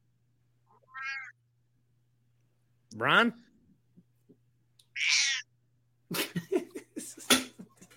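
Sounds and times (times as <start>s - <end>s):
faint steady hum: 0.0s - 7.9s
cat meowing: 0.7s - 1.4s, 4.9s - 5.5s
speech: 2.9s - 3.4s
laughter: 6.1s - 7.9s.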